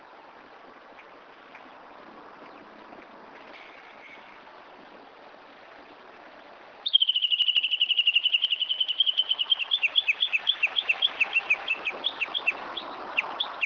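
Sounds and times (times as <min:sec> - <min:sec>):
Japanese bush warbler singing: 0:06.9 - 0:13.6.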